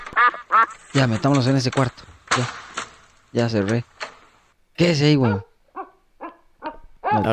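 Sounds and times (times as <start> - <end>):
speech: 0.2 - 2.6, 3.3 - 3.9, 4.8 - 5.5, 7.1 - 7.3
dogs barking: 5.2 - 7.3.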